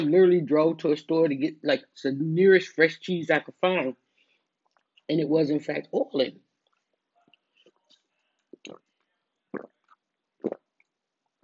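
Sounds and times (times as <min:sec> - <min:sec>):
speech: 0:00.1 - 0:04.0, 0:05.1 - 0:06.4, 0:08.6 - 0:08.8
wet mouth sounds of person swallowing food: 0:08.5 - 0:11.4
short gulping bursts: 0:09.5 - 0:10.7.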